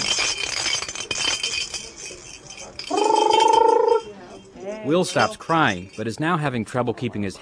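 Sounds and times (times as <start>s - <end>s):
baby noisemakers shaken for a crying baby: 0.0s - 6.3s
squeaky tone: 2.8s - 4.2s
speech: 4.9s - 7.4s.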